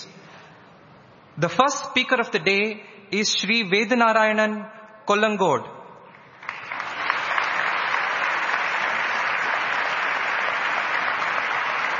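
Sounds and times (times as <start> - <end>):
speech: 1.4 - 5.8
audience applause from a sizable crowd: 6.4 - 11.9.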